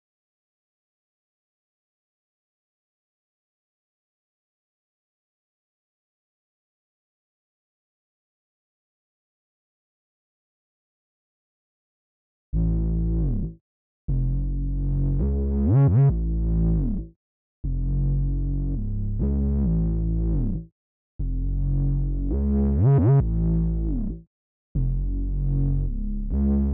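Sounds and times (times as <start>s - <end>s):
bass line in C sharp minor: 12.6s - 24.2s, 24.8s - 26.7s.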